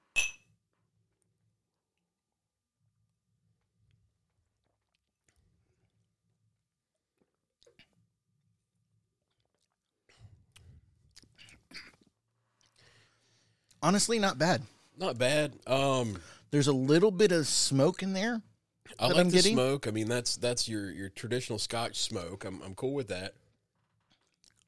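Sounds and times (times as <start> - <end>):
glasses of blended Scotch whisky clinking in a toast: 0.1 - 0.4
speech: 13.8 - 23.4.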